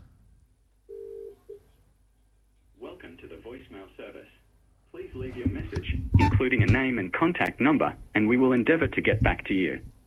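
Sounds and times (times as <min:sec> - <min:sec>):
telephone tones placing a call: 0:00.9 - 0:01.6
speech: 0:05.1 - 0:09.9.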